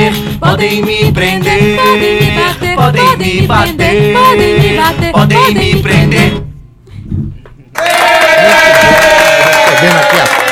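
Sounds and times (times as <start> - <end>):
speech: 0.5 - 6.5
loud audience applause with crowd noise: 7.8 - 10.5.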